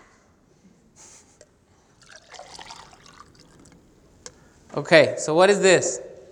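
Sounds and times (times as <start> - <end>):
water pouring and trickling: 2.0 - 4.4
speech: 4.8 - 6.1.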